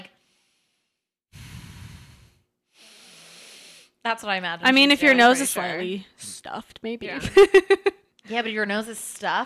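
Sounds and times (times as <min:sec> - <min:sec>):
person imitating heavy steady breathing: 0:01.4 - 0:03.8
speech: 0:04.1 - 0:09.4.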